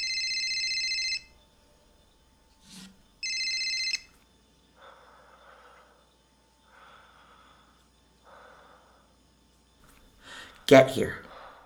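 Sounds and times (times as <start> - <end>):
burner phone ringing: 0.0 - 1.4, 3.2 - 4.2
faint noise: 0.0 - 11.6
speech: 10.7 - 11.2.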